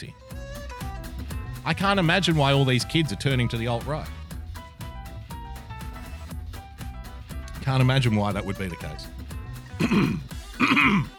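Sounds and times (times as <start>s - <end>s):
speech: 0.0s - 0.3s, 1.6s - 4.2s, 7.7s - 9.2s, 9.8s - 11.1s
rough guttural throat clearing: 9.8s - 11.1s.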